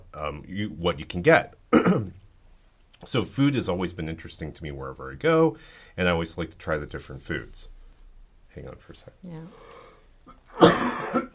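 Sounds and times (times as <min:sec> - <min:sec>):
speech: 0:00.2 - 0:02.2, 0:03.0 - 0:07.7, 0:08.6 - 0:10.9
harsh cough: 0:01.7 - 0:02.2, 0:10.5 - 0:11.3.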